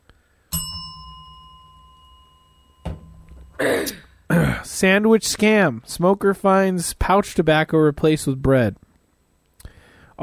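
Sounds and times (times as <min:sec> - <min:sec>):
bell ding: 0:00.5 - 0:04.3
speech: 0:03.6 - 0:04.0, 0:04.7 - 0:08.9.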